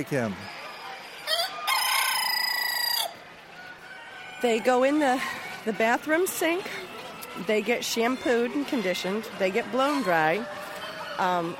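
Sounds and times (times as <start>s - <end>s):
speech: 0.0s - 0.6s, 4.4s - 10.6s, 11.2s - 11.5s
Dorking rooster crowing: 1.2s - 5.5s, 7.4s - 11.5s.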